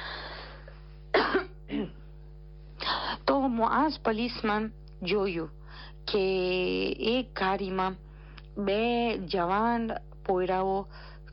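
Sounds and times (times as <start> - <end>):
low steady hum: 0.0 - 11.3
person with an irritated throat coughing: 1.2 - 2.0
speech: 3.4 - 8.0, 8.6 - 11.1.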